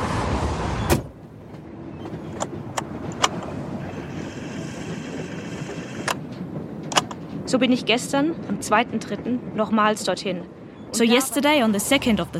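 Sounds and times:
rumble of traffic or passing train under railway bridge: 0.0 - 12.3
speech: 7.5 - 12.3.

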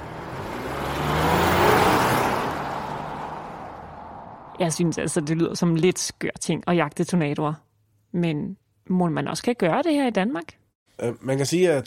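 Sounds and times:
car engine and tire roar driving past: 0.0 - 4.8
speech: 4.6 - 11.8.

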